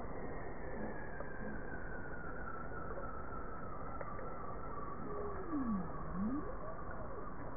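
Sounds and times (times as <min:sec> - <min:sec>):
bowhead whale call: 0:00.2 - 0:07.4
faint high tone: 0:05.0 - 0:07.0.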